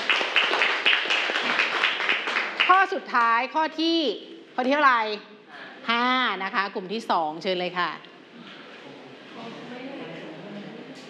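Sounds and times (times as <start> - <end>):
classroom applause from students clapping: 0.0 - 3.4
speech: 2.7 - 8.1.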